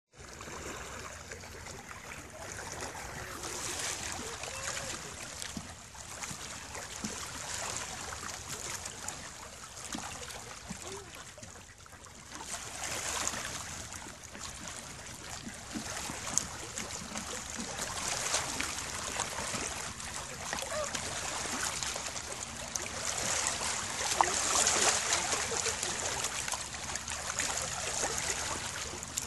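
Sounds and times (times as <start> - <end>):
calm waves of Lake Garda: 0.1 - 29.2.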